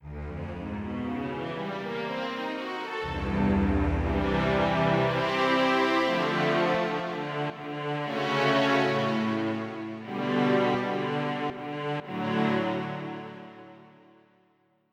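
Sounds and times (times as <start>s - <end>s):
slower chorus on strings: 0.0s - 14.3s.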